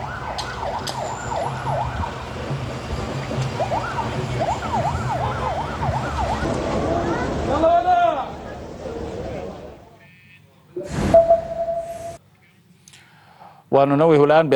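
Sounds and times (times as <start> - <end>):
ambulance siren wailing in Gaza City: 0.0 - 7.6, 10.8 - 12.2
street noise in Gaza City: 0.0 - 13.0
speech: 13.8 - 14.5.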